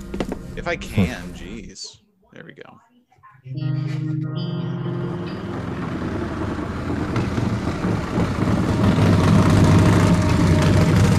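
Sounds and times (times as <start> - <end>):
speech: 0.6 - 5.4
motorcycle engine running: 4.5 - 11.1.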